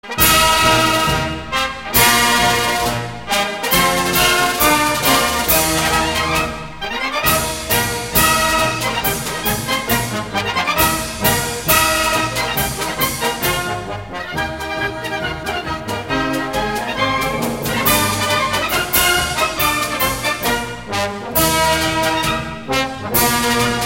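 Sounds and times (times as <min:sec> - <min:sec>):
welcome march music at a sports ground: 0:00.0 - 0:23.8.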